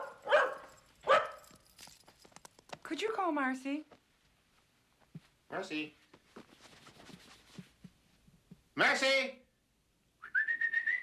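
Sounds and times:
dog barking: 0:00.0 - 0:01.5
speech: 0:02.9 - 0:04.0, 0:05.5 - 0:06.0, 0:08.8 - 0:09.4.

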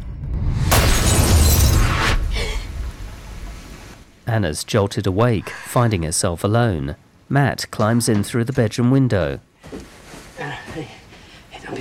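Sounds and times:
glass smashing on the floor: 0:00.7 - 0:02.2
speech: 0:04.3 - 0:11.0.

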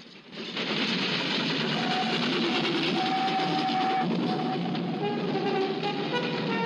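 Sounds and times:
train passing: 0:00.0 - 0:06.6.

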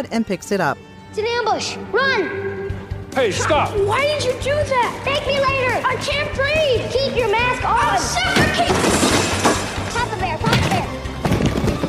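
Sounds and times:
speech: 0:00.0 - 0:02.6, 0:03.2 - 0:10.3
thuds and clattering: 0:08.3 - 0:11.8
person slamming into an office door: 0:08.4 - 0:09.9.

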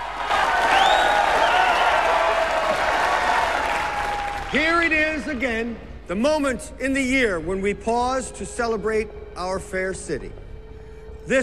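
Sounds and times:
crowd below a balcony cheering and applauding at a city celebration: 0:00.0 - 0:05.6
speech: 0:04.5 - 0:10.4, 0:11.2 - 0:11.4.

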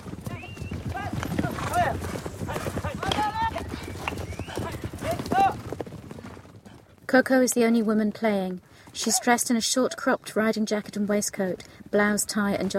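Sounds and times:
horses whinnying: 0:00.0 - 0:06.4
horses galloping during a polo match: 0:00.0 - 0:12.7
speech: 0:07.1 - 0:12.7.

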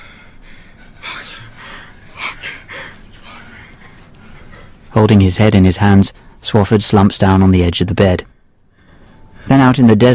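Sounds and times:
man panting heavily standing in a tent: 0:00.0 - 0:04.9
speech: 0:05.0 - 0:08.3, 0:09.5 - 0:10.1.

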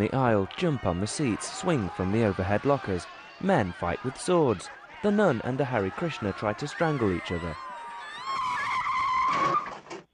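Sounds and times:
speech: 0:00.0 - 0:07.7
laughter: 0:00.0 - 0:08.7
car pulling up with a short tire squeal: 0:06.7 - 0:09.8.

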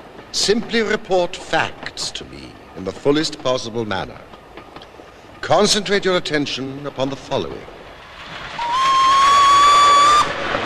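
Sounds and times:
low steam train rumble: 0:00.0 - 0:10.6
speech: 0:00.4 - 0:04.4, 0:05.5 - 0:07.8
steam train whistle passing a signal box: 0:08.6 - 0:10.3.

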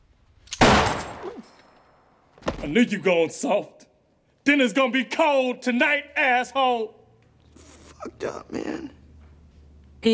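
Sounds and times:
gunshot fired from a trapdoor: 0:00.6 - 0:01.5
speech: 0:02.6 - 0:03.8, 0:04.5 - 0:07.0, 0:08.0 - 0:09.0.

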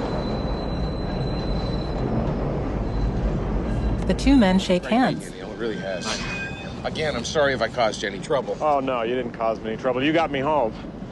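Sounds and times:
thin high whine: 0:00.0 - 0:08.1
train approaching: 0:00.0 - 0:11.1
speech: 0:04.1 - 0:10.9.

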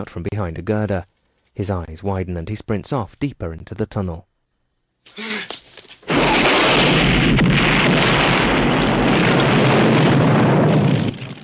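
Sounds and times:
speech: 0:00.0 - 0:04.3, 0:05.0 - 0:05.3
rocket launcher blast exploding at a mine entrance: 0:06.1 - 0:11.4.

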